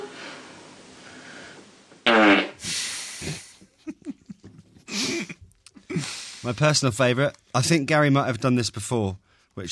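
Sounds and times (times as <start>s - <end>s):
little fart from a sleeping girl: 2.0s - 3.5s
speech: 6.4s - 9.6s.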